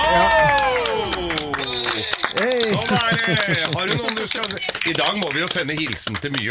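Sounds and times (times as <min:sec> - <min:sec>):
hands clapping: 0:00.0 - 0:06.4
laughter: 0:00.0 - 0:06.4
speech: 0:02.9 - 0:06.4.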